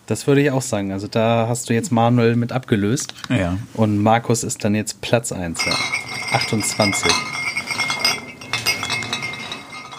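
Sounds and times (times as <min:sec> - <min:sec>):
speech: 0:00.1 - 0:07.4
glasses clinking while drinks are poured from a drinks cart: 0:05.6 - 0:09.9.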